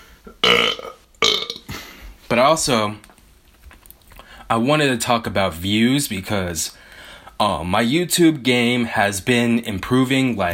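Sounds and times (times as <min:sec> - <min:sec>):
loud rumbling burps: 0:00.2 - 0:01.9
speech: 0:02.3 - 0:03.1, 0:04.5 - 0:06.8, 0:07.4 - 0:10.5.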